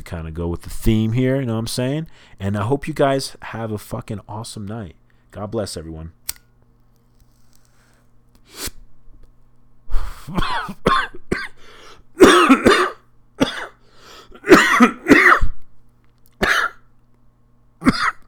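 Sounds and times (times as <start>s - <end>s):
speech: 0.1s - 6.2s, 10.3s - 11.5s
harsh hacking coughing after inhaling cannabis smoke: 10.2s - 11.6s, 12.2s - 15.6s, 16.4s - 16.9s, 17.8s - 18.2s
wheezy breaths: 11.6s - 12.1s, 13.8s - 14.5s.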